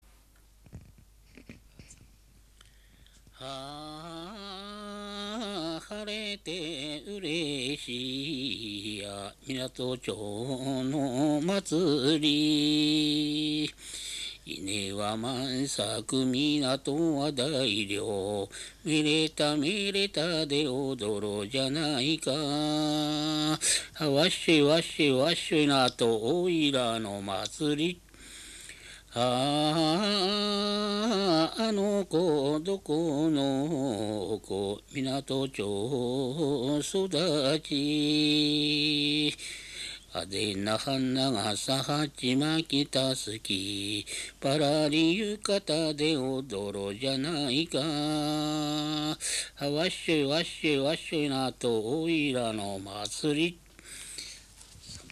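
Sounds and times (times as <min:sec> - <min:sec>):
Japanese minyo folk song: 0:02.6 - 0:55.1.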